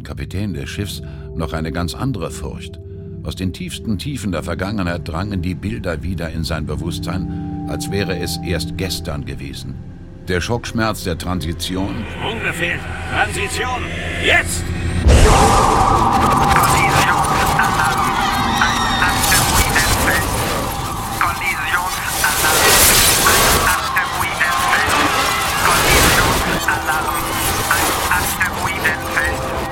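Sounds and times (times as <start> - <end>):
speech: 0.0 - 14.8
rumbling machinery aboard a spaceship: 11.5 - 27.8
warning sirens wailing aboard a spaceship: 11.6 - 29.7.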